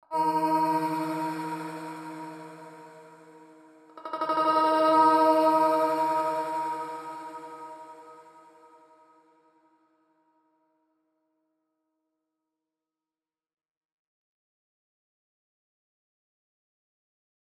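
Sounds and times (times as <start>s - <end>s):
vocals from a vocal pack in E: 0.0s - 9.0s.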